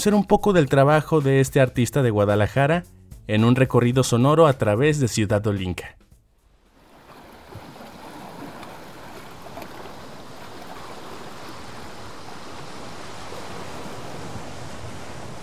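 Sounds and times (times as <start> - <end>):
speech: 0.0 - 6.0
ocean waves washing against the coast of Jalisco Mexico: 6.6 - 15.4.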